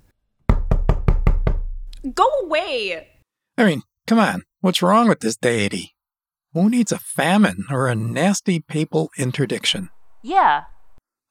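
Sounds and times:
loud knocking on a door: 0.5 - 1.9
speech: 2.0 - 10.7.

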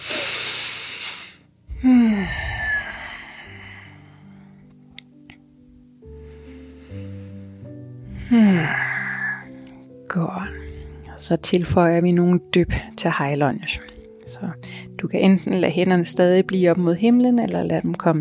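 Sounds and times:
slow deep breathing held in a yoga lunge: 0.0 - 4.8, 6.0 - 9.9, 14.6 - 15.0
soft voiced sigh: 1.7 - 3.9, 8.2 - 9.5
speech: 8.3 - 8.8, 10.1 - 10.6, 11.2 - 18.1.

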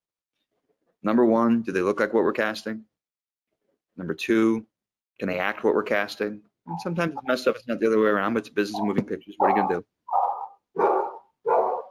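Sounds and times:
speech: 1.0 - 2.9, 4.0 - 10.2
dog barking: 9.4 - 11.8.

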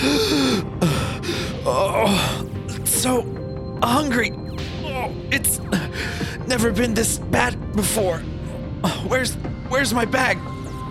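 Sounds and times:
person gasping for air with rasping breaths: 0.0 - 2.6, 5.7 - 6.5
speech: 3.0 - 10.5.

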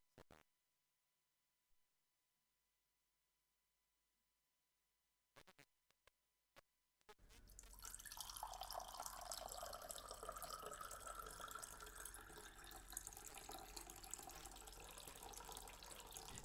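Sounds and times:
water pouring into a sink or container: 7.4 - 16.4.

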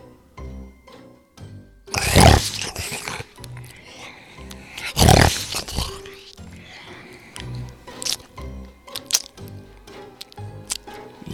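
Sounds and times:
person imitating a wolf snarling and growling while devouring prey: 1.9 - 6.3
loud roaring bursts: 1.9 - 7.1
crunching and slurping noises: 1.9 - 9.4
wet squelching chomps: 1.9 - 9.4.

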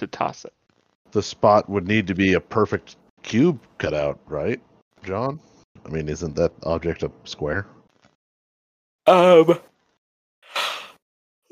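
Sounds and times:
speech: 0.2 - 7.8, 9.1 - 9.7
breathy exhale: 10.5 - 11.0
yawn: 10.5 - 11.5.

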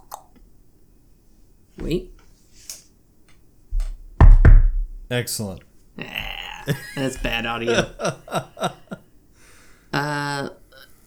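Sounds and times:
speech: 1.8 - 2.2, 5.1 - 8.8
knocking on a door: 3.8 - 5.1
laughter: 6.1 - 9.1.

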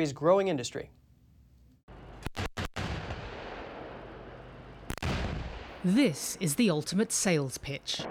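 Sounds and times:
speech: 0.0 - 1.0, 5.8 - 8.0
artillery fire from K2 tanks and K9 howitzers in a military demonstration on a South Korean hillside: 2.2 - 5.9.

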